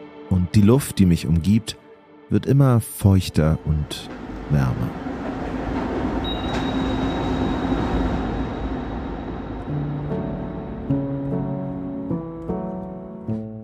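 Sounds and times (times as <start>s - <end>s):
speech: 0.3s - 5.4s
electric locomotive train rolling along rails into mountain tunnel: 3.8s - 12.3s
metallic squeals and tonal screeching: 4.1s - 10.2s.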